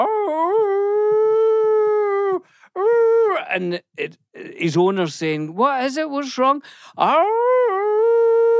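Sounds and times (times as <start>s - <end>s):
person imitating a hound dog howling: 0.0s - 3.6s, 7.0s - 8.5s
speech: 3.6s - 7.5s.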